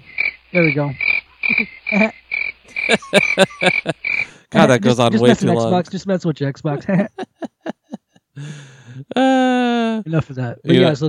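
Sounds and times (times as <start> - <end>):
crickets chirping at night: 0.0 - 4.6
rhythmic croaking bursts: 0.0 - 4.6
speech: 0.5 - 2.2, 2.9 - 7.4, 8.4 - 11.0
laughter: 2.7 - 5.7, 6.8 - 8.7.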